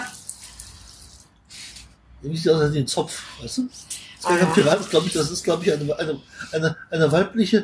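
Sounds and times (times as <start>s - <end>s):
water running and gurgling into a rubber toy duck: 0.0s - 1.9s, 3.8s - 5.8s
speech: 2.2s - 7.6s.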